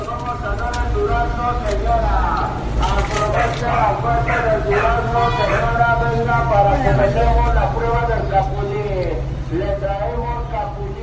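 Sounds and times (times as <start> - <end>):
amplified vendor voice calling out over a loudspeaker: 0.0 - 11.0
fruit vendor truck engine rumble: 0.0 - 11.0
street noise in Mexico: 0.0 - 11.0.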